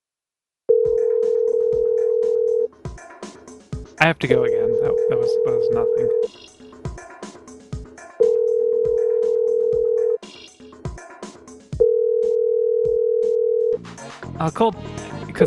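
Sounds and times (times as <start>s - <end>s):
telephone ringing on the line: 0.7s - 2.7s, 4.4s - 6.3s, 8.2s - 10.2s, 11.8s - 13.8s
speech: 4.0s - 6.5s, 14.4s - 15.4s.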